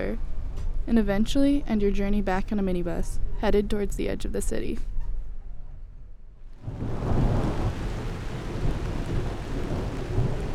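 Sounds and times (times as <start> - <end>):
speech: 0.0 - 4.9
deep thunder-like rumble: 6.6 - 10.5
dense summer rain downpour: 6.6 - 10.5.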